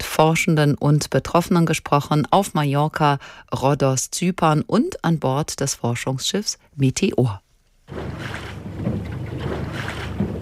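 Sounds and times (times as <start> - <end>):
speech: 0.2 - 9.1
faint splashing surges: 7.8 - 10.4
catamaran moving through water: 7.9 - 10.4.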